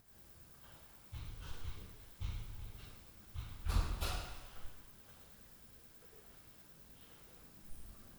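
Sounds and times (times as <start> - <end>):
door noise at night: 1.2 - 4.7.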